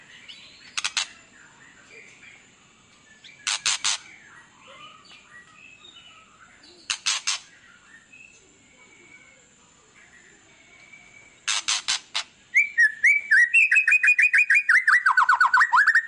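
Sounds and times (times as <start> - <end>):
white-rumped shama clicks and whistles: 0.7 - 1.2, 3.4 - 4.1, 11.4 - 16.0.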